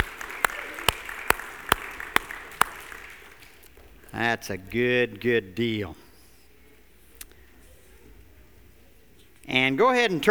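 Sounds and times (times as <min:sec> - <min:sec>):
crowd clapping in unison: 0:00.0 - 0:03.7
speech: 0:04.2 - 0:06.0, 0:09.5 - 0:10.2.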